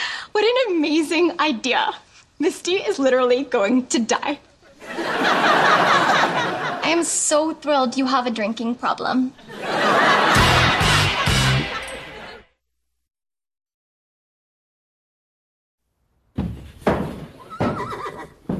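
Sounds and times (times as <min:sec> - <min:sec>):
speech: 0:00.4 - 0:05.8, 0:06.9 - 0:10.6
laughter: 0:04.8 - 0:06.8, 0:09.4 - 0:12.5
horse neighing and whinnying: 0:17.4 - 0:18.5.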